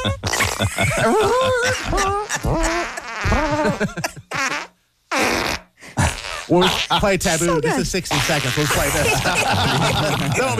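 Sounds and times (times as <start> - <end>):
laughter: 0.0 - 4.3, 8.7 - 10.5
speech: 0.0 - 4.4, 6.5 - 10.5
long wet fart: 1.7 - 7.0, 8.1 - 9.0.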